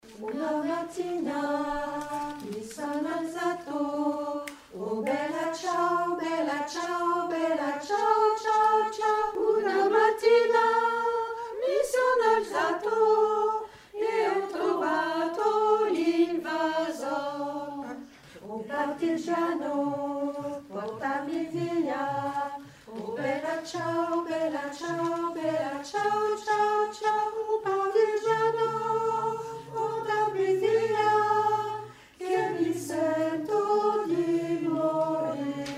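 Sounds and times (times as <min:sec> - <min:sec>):
alto voices singing: 0:00.0 - 0:35.7.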